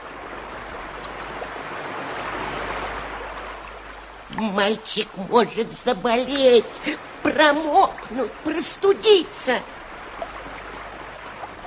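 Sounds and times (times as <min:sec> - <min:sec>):
warm light rain pouring down after thunder: 0:00.0 - 0:11.6
speech: 0:04.4 - 0:09.8.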